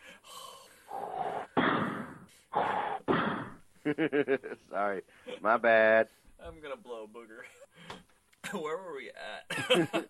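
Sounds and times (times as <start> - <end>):
man breathing heavily into a microphone: 0.0 - 3.0
speech: 3.9 - 7.6, 8.5 - 10.0.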